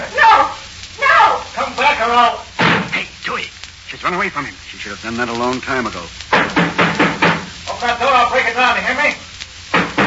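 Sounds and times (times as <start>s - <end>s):
person shouting agitatedly: 0.0s - 1.5s
speech: 2.0s - 2.4s, 4.0s - 6.6s, 7.8s - 9.3s
heavy pounding on a door: 6.4s - 7.5s, 9.8s - 10.0s.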